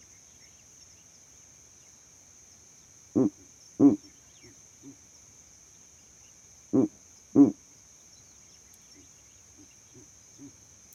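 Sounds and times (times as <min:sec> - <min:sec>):
owl hooting at night: 0:03.2 - 0:04.1, 0:06.8 - 0:07.6.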